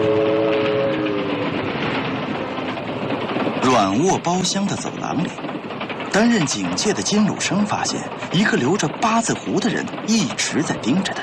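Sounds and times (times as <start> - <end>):
train horn: 0.0 - 1.7
train wheels on rails in mountainous countryside at night: 0.0 - 11.2
speech: 3.8 - 5.5, 6.2 - 11.2.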